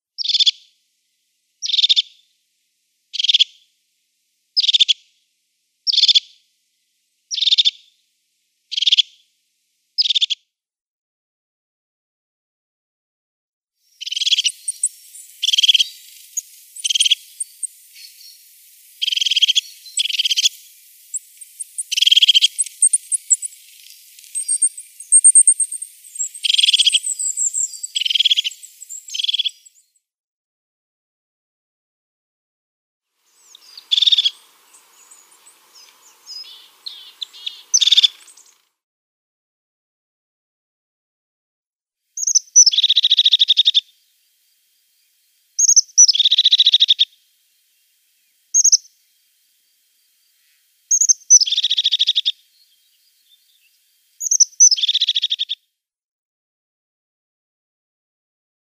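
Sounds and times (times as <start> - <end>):
crested tit calls: 0.2 - 0.6, 1.6 - 2.2, 3.1 - 3.6, 4.6 - 5.0, 5.9 - 6.4, 7.3 - 7.9, 8.7 - 9.2, 10.0 - 10.4, 13.9 - 29.9, 33.3 - 38.7, 42.2 - 44.0, 45.6 - 47.3, 48.0 - 55.6.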